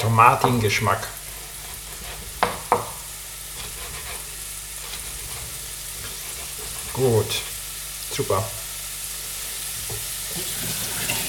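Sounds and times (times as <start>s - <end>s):
speech: 0.0s - 1.2s, 7.0s - 7.5s, 8.1s - 8.6s
carrots sizzling in a hot frying pan: 0.0s - 11.2s.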